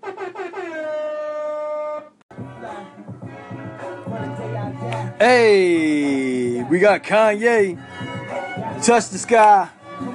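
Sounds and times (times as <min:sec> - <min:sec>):
loud brassy air horn blast: 0:00.0 - 0:04.6
busy music: 0:02.3 - 0:10.1
speech: 0:05.2 - 0:05.9, 0:06.7 - 0:07.9, 0:08.8 - 0:10.1.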